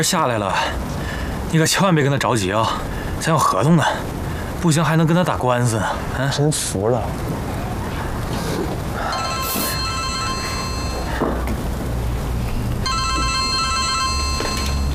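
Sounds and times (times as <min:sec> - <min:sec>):
speech: 0:00.0 - 0:07.5
constant hum: 0:00.0 - 0:14.9
phone ringtone for an incoming call: 0:09.1 - 0:11.2, 0:12.8 - 0:14.9.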